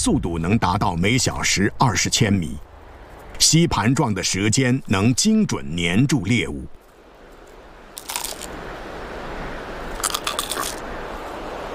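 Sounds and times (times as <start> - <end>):
speech: 0.0 - 2.7, 3.4 - 6.8
steady hiss: 0.0 - 11.7
chameleon biting down on a locust: 8.0 - 8.6, 9.9 - 10.8.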